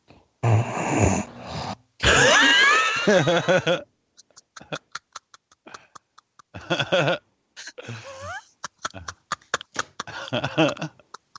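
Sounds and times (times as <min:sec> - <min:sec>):
person snoring: 0:00.4 - 0:01.9
laughter: 0:02.0 - 0:11.3.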